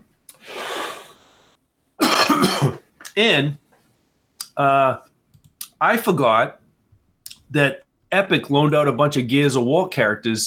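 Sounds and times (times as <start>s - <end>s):
raspy exhale: 0.3s - 1.6s
person coughing harshly: 2.0s - 2.9s
speech: 2.4s - 3.6s, 4.6s - 5.1s, 5.8s - 6.6s, 7.5s - 10.4s.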